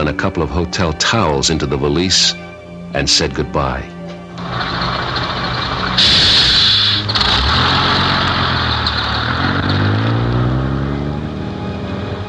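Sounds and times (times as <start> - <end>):
speech: 0.1 - 4.8
large bus engine rumbling: 3.7 - 12.2
bus air brakes hissing: 4.4 - 8.1.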